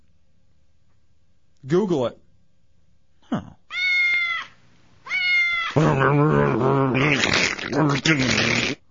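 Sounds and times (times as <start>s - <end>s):
speech: 1.6s - 2.2s, 3.3s - 3.5s, 5.8s - 8.8s
cat meowing: 3.7s - 5.8s
loud distorted cat yowling: 3.7s - 8.4s.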